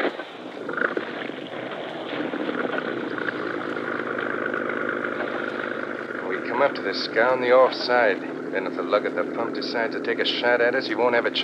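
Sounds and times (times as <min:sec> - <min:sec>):
wind noise: 0:00.0 - 0:08.5
boat motor running with a low throbbing drone: 0:00.0 - 0:11.4
speech: 0:06.6 - 0:11.4.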